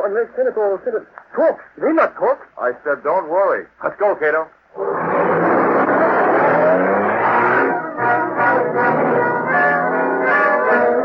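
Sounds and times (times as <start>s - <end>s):
speech: 0.1s - 5.5s
car engine rumbling as the car drives up: 4.8s - 10.9s.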